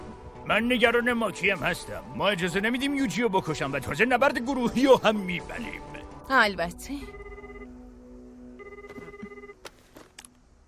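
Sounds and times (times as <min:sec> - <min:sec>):
speech: 0:00.5 - 0:07.2
electronic telephone ringtone: 0:07.0 - 0:07.7, 0:08.6 - 0:09.6.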